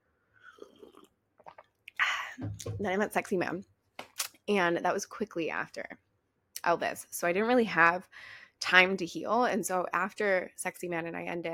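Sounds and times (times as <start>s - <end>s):
person slurping tea: 0.4s - 2.0s
soft wet gulps of tea: 0.5s - 2.8s
speech: 2.6s - 3.8s, 4.5s - 6.0s, 6.6s - 11.5s.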